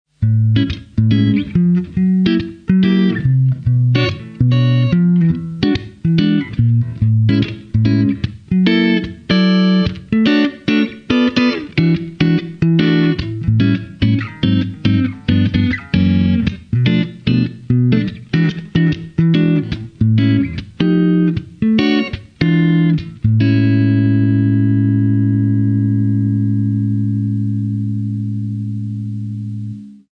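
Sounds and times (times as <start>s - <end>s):
clean blues guitar on neck pickup: 0.1s - 30.0s.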